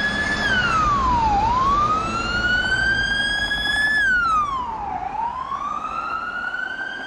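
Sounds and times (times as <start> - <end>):
steady rumble of passing traffic: 0.0 - 7.0
wailing emergency vehicle siren: 0.0 - 7.0.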